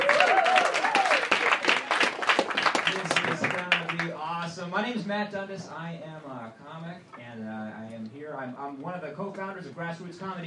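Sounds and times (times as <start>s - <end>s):
audience applause at a comedy show in a tavern: 0.0s - 4.1s
speech: 4.9s - 10.4s.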